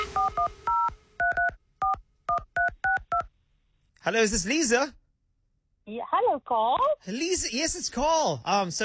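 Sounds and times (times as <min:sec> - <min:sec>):
touch-tone telephone keypad beeps: 0:00.1 - 0:03.3
speech: 0:04.1 - 0:05.0, 0:05.9 - 0:08.8.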